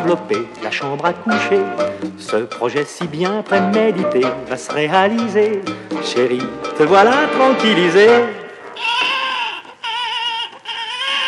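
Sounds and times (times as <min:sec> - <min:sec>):
speech: 0:00.0 - 0:08.9
baby crying in loud sustained wails: 0:08.8 - 0:11.2.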